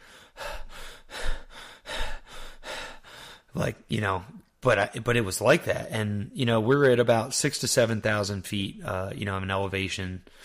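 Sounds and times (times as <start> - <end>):
person imitating out-of-breath panting: 0.0 - 3.6
speech: 3.6 - 10.4.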